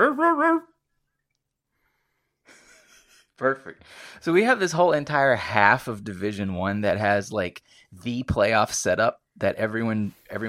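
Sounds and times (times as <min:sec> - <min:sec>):
person imitating a dog barking in a Casio dog voice: 0:00.0 - 0:00.7
speech: 0:00.2 - 0:00.7, 0:03.4 - 0:10.4.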